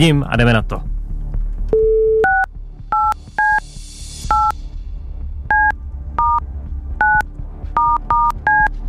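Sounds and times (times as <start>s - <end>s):
speech: 0.0s - 1.0s
telephone number being dialed with paired touch-tone beeps: 1.8s - 3.6s, 4.3s - 4.6s, 5.5s - 6.4s, 7.0s - 7.2s, 7.8s - 8.7s.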